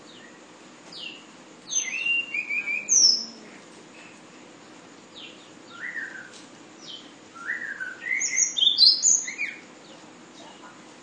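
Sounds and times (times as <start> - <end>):
flowerpecker whistled song in sulingan style: 0.0 - 3.4, 5.2 - 10.5
background hiss: 0.0 - 11.0.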